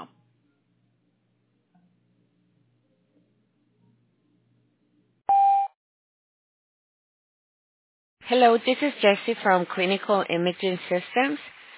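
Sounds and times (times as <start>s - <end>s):
voicemail answering machine beep tone of a medical office: 5.3s - 5.7s
speech: 8.3s - 11.5s.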